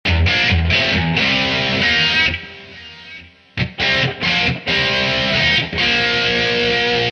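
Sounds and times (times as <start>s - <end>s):
C 138 rhythm: 0.1s - 7.1s.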